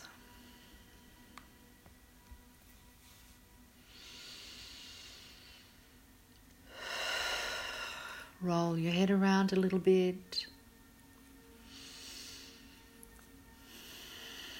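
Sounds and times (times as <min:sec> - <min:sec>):
deep breaths in and out through the nose in a guided breathing exercise: 0:03.8 - 0:06.0, 0:06.7 - 0:08.4, 0:11.6 - 0:13.0, 0:13.6 - 0:14.5
speech: 0:08.4 - 0:10.5.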